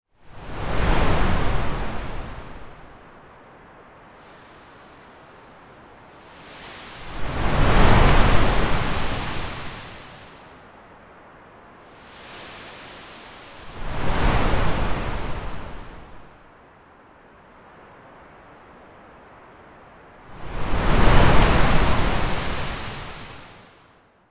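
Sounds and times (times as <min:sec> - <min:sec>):
wave crashing: 0:00.3 - 0:03.0, 0:04.1 - 0:10.8, 0:11.8 - 0:16.5, 0:20.3 - 0:23.7.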